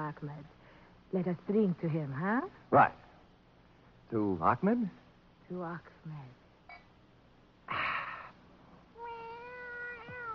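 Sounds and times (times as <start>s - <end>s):
speech: 0.1s - 3.0s, 4.1s - 6.4s
cat meowing: 9.0s - 10.3s.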